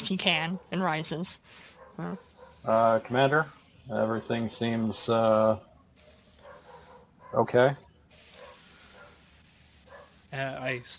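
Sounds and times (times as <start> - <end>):
steady hiss: 0.0 - 10.9
speech: 0.1 - 5.7, 7.3 - 7.8, 10.3 - 10.9
dog giving short high barks: 0.3 - 0.9, 1.8 - 2.8, 5.7 - 7.8, 8.4 - 9.2, 9.8 - 10.2.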